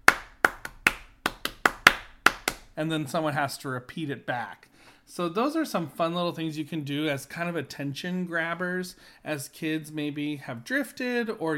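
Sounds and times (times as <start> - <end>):
hands clapping a clapping-game rhythm: 0.0 - 2.8
speech: 2.8 - 11.5.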